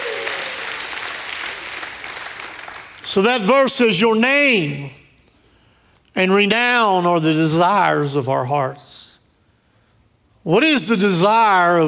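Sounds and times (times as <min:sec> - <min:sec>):
church congregation applauding: 0:00.0 - 0:03.2
speech: 0:03.0 - 0:05.0, 0:06.2 - 0:08.9, 0:10.4 - 0:11.8.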